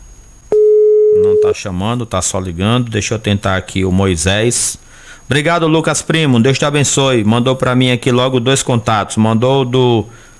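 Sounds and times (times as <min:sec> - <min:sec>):
faint noise: 0:00.0 - 0:10.3
telephone line tone on a call that is not connecting: 0:00.5 - 0:01.6
speech: 0:01.2 - 0:10.2.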